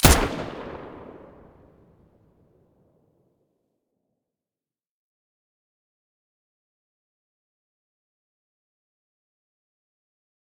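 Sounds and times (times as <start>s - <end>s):
assault rifle gunshots from the muzzle: 0.0s - 1.8s.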